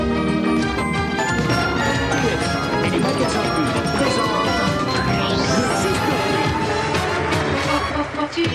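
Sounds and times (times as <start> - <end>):
medley of upbeat game show theme music with brass and percussion: 0.0 - 8.5.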